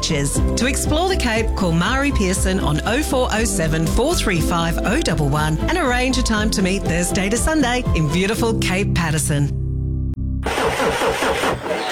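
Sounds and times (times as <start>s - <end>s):
speech: 0.1s - 9.6s
car engine cranking and failing to start: 10.4s - 11.9s.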